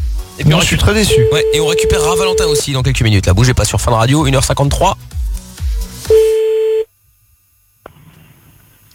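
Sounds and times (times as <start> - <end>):
speech: 0.4 - 5.2
steady single-pitch telephone tone: 1.0 - 2.6, 6.1 - 6.9
telephone dialling tones for a phone call: 1.0 - 2.6.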